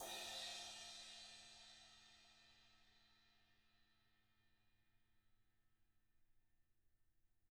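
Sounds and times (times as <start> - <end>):
brushed cymbal: 0.0 - 3.3.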